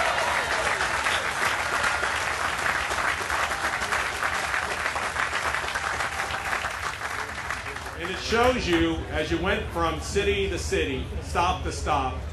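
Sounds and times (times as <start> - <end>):
large crowd in Norfolk applauding an arriving train: 0.0 - 9.0
speech: 8.3 - 12.3.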